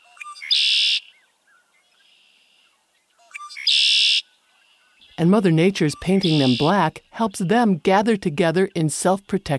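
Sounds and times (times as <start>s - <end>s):
red-winged blackbird songs: 0.0s - 9.5s
faint red-winged blackbird chatter: 0.1s - 5.2s
speech: 5.2s - 9.5s.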